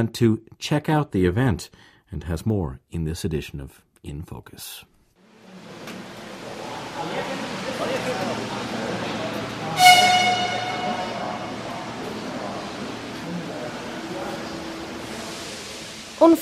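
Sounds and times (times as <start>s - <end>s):
speech: 0.0s - 4.9s, 16.2s - 16.4s
crowd murmuring at a busy train station in Prague: 5.4s - 16.1s
loud sharp whistle or horn blast at a train station: 9.7s - 12.0s.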